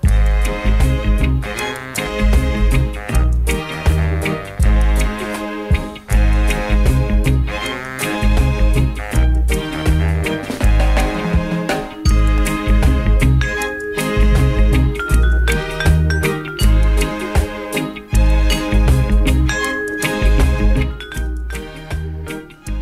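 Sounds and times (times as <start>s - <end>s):
steady-beat music track with bass and chords: 0.0s - 22.7s
small bell jingling: 13.4s - 17.2s, 18.5s - 22.6s.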